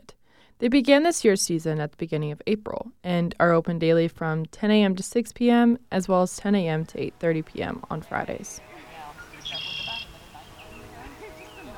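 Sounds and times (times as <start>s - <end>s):
speech: 0.6s - 8.8s
high bright bird chirping outdoors at a lavender farm in rural Missouri: 6.6s - 11.7s
faint voices murmuring: 7.9s - 11.7s.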